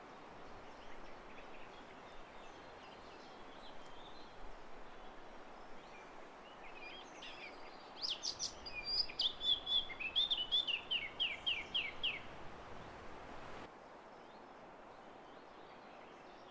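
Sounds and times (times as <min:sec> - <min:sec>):
quiet hiss: 0:00.0 - 0:16.4
Eurasian blackcap Sylvia atricapilla warbling song: 0:06.8 - 0:12.3.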